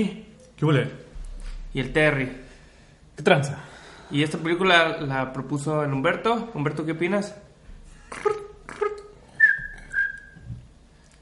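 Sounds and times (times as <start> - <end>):
speech: 0.0 - 1.0, 1.7 - 2.5, 3.2 - 7.4, 8.1 - 9.0
person whistling a short tune: 9.3 - 10.6.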